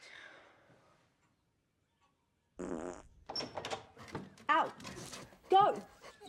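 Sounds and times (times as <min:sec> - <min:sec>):
dog with digestion issues passing gas: 0:02.6 - 0:03.2
speech: 0:05.5 - 0:05.9.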